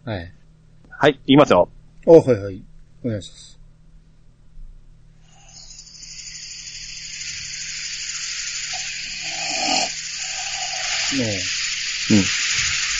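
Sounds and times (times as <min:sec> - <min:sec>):
speech: 0:00.0 - 0:00.4, 0:01.0 - 0:03.6, 0:11.1 - 0:12.4
person imitating a rasping human snore: 0:08.7 - 0:12.3.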